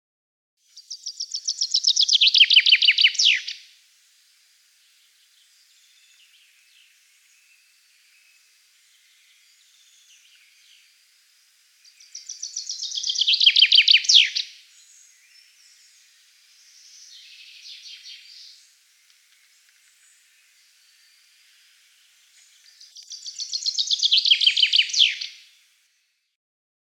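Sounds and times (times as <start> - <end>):
chaffinch calling: 0.8 - 3.6, 11.9 - 15.7, 22.6 - 25.4.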